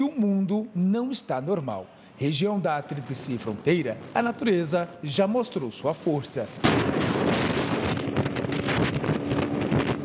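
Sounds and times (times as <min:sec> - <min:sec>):
speech: 0:00.0 - 0:08.0
strong wind buffeting the microphone: 0:02.8 - 0:05.1, 0:05.9 - 0:10.0.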